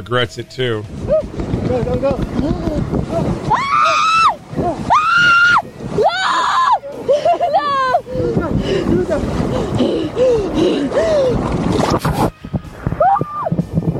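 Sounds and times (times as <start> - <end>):
speech: 0.0 - 3.7, 8.5 - 11.2
splashing water: 0.0 - 13.9
wind noise: 0.0 - 13.9
woman screaming during polar plunge into ocean: 3.5 - 6.8, 7.5 - 8.0
laughter: 6.7 - 11.3.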